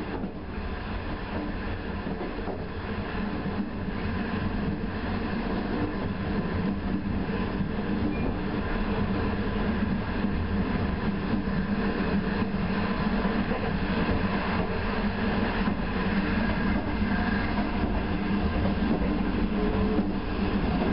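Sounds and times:
night train carriage rumble and rattle from Beijing to Xi'an: 0.0 - 20.9.

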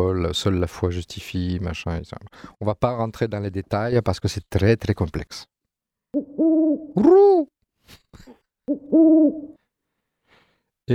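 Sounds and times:
speech: 0.0 - 5.5, 6.4 - 9.6
pigeon cooing: 6.2 - 7.5, 8.7 - 9.6.

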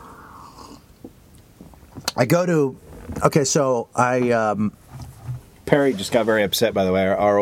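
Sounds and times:
person sipping coffee: 0.0 - 1.0
speech: 2.2 - 4.8, 5.7 - 7.3.

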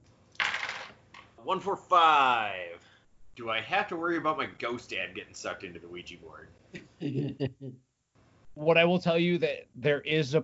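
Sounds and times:
three dice tumbling across a hard surface: 0.3 - 1.3
speech: 1.4 - 7.9, 8.6 - 10.4.

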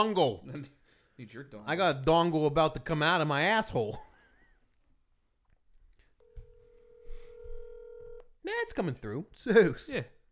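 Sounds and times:
speech: 0.0 - 4.1, 8.4 - 10.2
electronic ringback tone of an outgoing phone call: 6.2 - 8.2.

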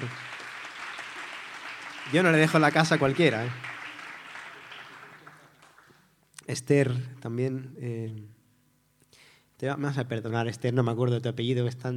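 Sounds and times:
crowd clapping for a guitarist being introduced: 0.0 - 6.1
speech: 2.1 - 3.7, 6.5 - 8.3, 9.6 - 11.9.

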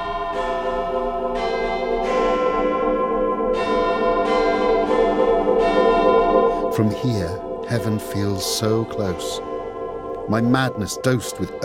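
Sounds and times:
clock tower bells chiming a quarter-hour sequence: 0.0 - 11.6
speech: 6.8 - 9.5, 10.3 - 11.6.

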